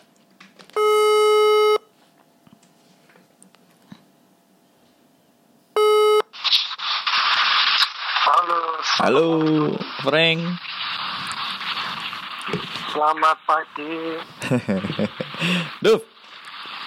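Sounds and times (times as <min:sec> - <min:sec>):
telephone ringback tone as electronic buzzes: 0:00.8 - 0:01.9, 0:05.8 - 0:06.3
loud hissing telephone line static: 0:06.3 - 0:16.8
speech: 0:09.0 - 0:10.7, 0:13.0 - 0:16.1
laughter: 0:14.4 - 0:15.8.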